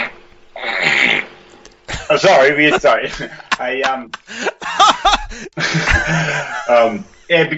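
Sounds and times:
loud raspy fart: 0:00.0 - 0:01.5
laughter: 0:01.9 - 0:07.5
speech: 0:02.1 - 0:04.5, 0:05.4 - 0:07.5.

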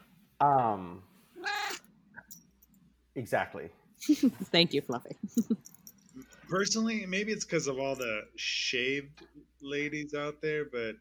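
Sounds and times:
cat meowing: 0:01.4 - 0:01.8
speech: 0:03.2 - 0:10.9.

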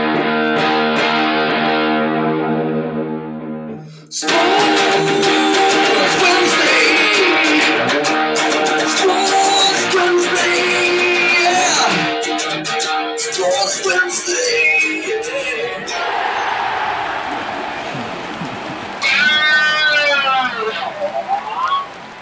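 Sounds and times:
loud rock intro music opening a sports talk program: 0:00.0 - 0:16.0
electric guitar squealing through wavering, bending high notes: 0:00.0 - 0:16.5, 0:19.0 - 0:22.0
laughter: 0:15.0 - 0:16.2, 0:17.1 - 0:21.6.

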